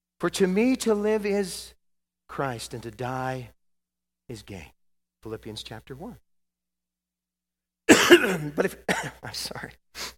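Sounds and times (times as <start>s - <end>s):
speech: 0.2s - 3.6s, 4.3s - 6.2s, 7.9s - 10.1s
man coughing with harsh hacking coughs: 7.9s - 9.7s.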